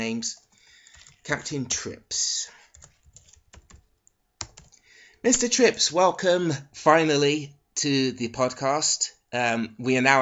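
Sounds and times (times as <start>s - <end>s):
speech: 0.0s - 0.4s, 1.3s - 2.6s, 5.2s - 10.1s
computer keyboard typing: 0.4s - 1.4s, 2.7s - 4.8s.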